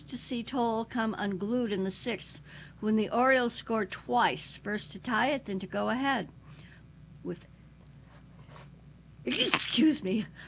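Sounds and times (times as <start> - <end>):
speech: 0.1 - 6.4, 7.2 - 7.5, 9.2 - 10.4
person sneezing: 9.3 - 9.9.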